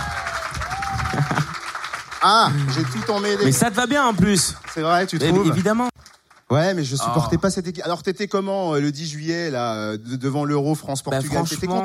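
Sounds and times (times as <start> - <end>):
faint cheers: 0.0 - 4.0
audience applauding: 0.0 - 6.5
speech: 2.2 - 5.9, 6.5 - 11.8.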